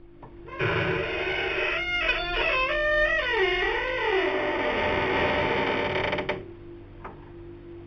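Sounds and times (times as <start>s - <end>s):
door squeaking: 0.5s - 6.4s.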